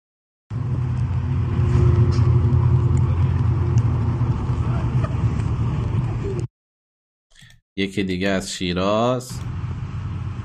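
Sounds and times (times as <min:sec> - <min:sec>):
heavy fuel tanker trucks rumbling along a road: 0:00.5 - 0:06.5, 0:09.2 - 0:10.4
speech: 0:07.8 - 0:09.6.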